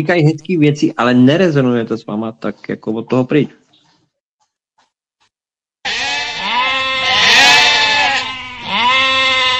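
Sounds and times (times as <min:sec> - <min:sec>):
speech: 0:00.0 - 0:03.6
sheep bleating with a long wavering baa: 0:05.8 - 0:09.5.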